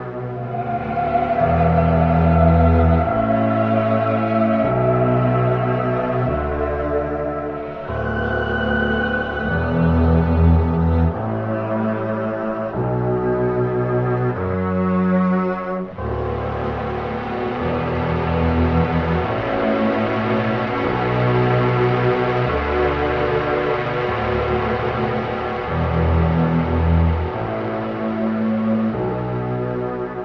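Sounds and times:
sad strings loop: 0.0s - 30.2s.

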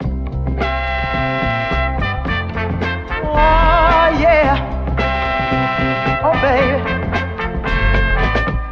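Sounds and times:
horn loop: 0.6s - 8.7s
voice loop: 3.2s - 4.6s, 6.2s - 6.8s.

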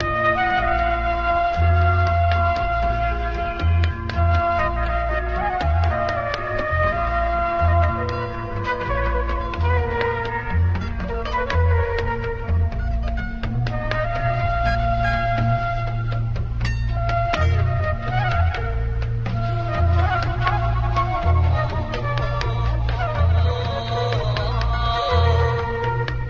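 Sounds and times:
flute loop: 0.0s - 26.2s.

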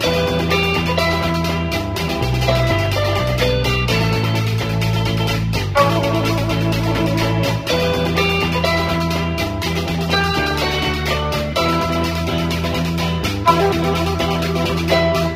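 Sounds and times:
guitar loop: 0.0s - 15.3s
horns: 13.5s - 15.3s.

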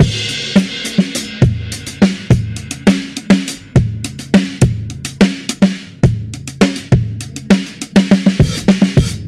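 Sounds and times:
hard hitting funky drum loops: 0.0s - 9.2s.

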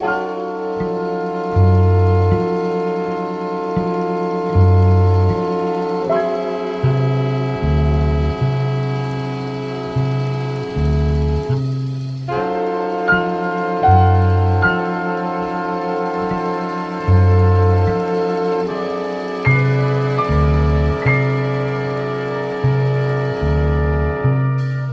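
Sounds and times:
bass in a sad loop: 0.0s - 24.9s
horns in a sad loop: 0.0s - 24.9s
piano in a sad loop: 0.0s - 24.9s.

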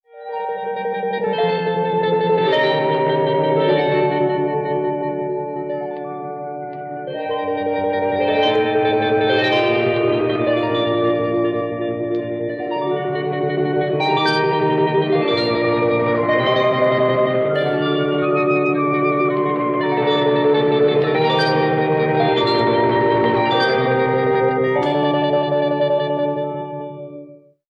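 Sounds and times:
keyboard: 0.0s - 27.6s
flute: 0.1s - 27.0s
sad mariachi band playing: 8.0s - 12.2s, 13.2s - 26.4s.

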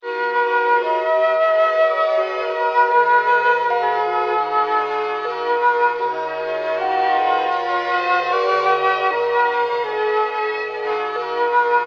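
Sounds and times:
jazz flute loop: 0.0s - 11.8s.

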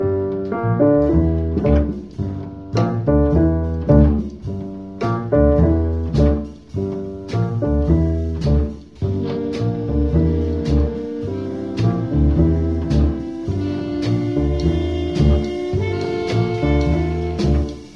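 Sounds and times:
piano in phonk loops: 0.0s - 17.9s
saxophone in phonk loops: 9.1s - 17.9s.

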